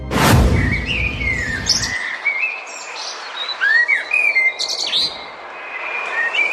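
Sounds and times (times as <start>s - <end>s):
loud broadband burst: 0.1s - 2.0s
small birds chirping and singing: 0.6s - 6.5s.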